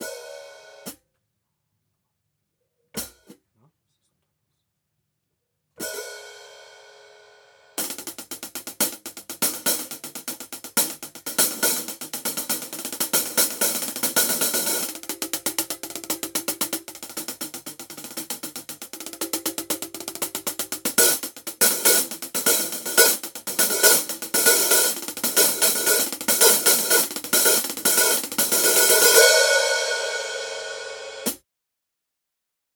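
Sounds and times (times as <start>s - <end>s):
Paiste PST8 hi-hat groove: 7.8s - 31.4s.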